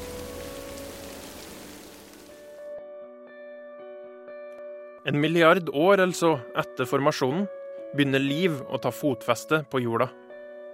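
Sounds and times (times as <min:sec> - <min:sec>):
rain falling: 0:00.0 - 0:02.6
speech: 0:05.0 - 0:10.2.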